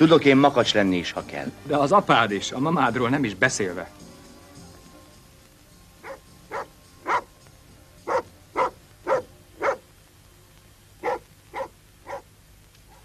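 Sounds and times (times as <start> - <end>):
speech: 0.0 - 4.0
dog barking: 6.0 - 7.3, 8.1 - 9.9, 11.0 - 12.3, 12.9 - 13.0.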